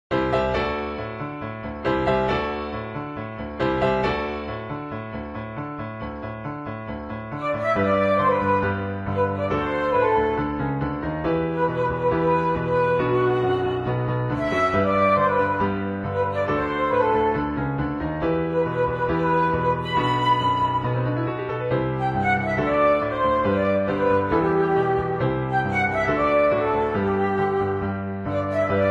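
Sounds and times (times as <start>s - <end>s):
piano: 0.1s - 28.8s
flute: 7.3s - 28.8s.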